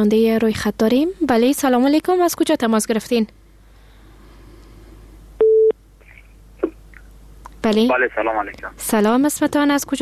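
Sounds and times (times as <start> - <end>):
speech: 0.0 - 3.4, 7.6 - 10.0
telephone busy tone after call disconnected: 5.4 - 5.7.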